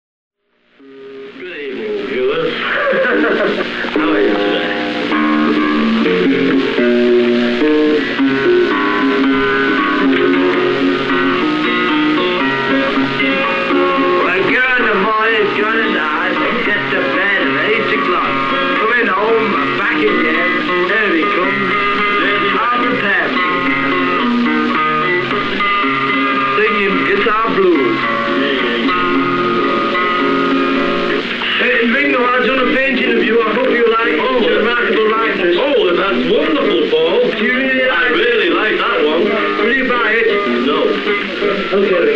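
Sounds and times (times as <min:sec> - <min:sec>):
blues guitar: 0:00.6 - 0:42.1
laughter: 0:02.4 - 0:04.5, 0:16.0 - 0:17.2.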